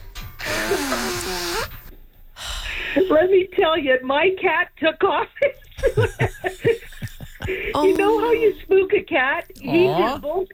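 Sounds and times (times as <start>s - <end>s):
person breathing: 0.4s - 1.7s, 2.4s - 3.2s, 7.4s - 7.8s
person blowing nose: 0.4s - 1.9s
speech: 3.0s - 6.8s, 7.5s - 10.5s
laughter: 5.4s - 8.6s.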